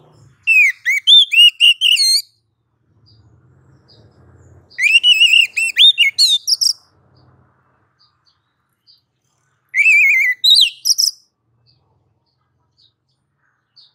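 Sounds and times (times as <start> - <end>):
female oriental magpie-robin calling to a male: 0.0 - 2.4, 4.7 - 6.9, 9.6 - 11.3.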